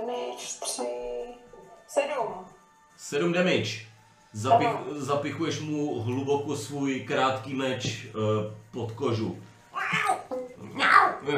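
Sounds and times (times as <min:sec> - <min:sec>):
speech: 0:00.1 - 0:01.1, 0:02.0 - 0:10.1
cat meowing: 0:09.7 - 0:11.3.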